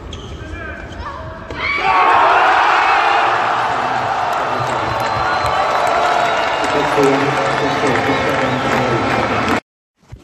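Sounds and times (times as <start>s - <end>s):
crowd cheering and chanting at tennis match: 1.8s - 9.6s.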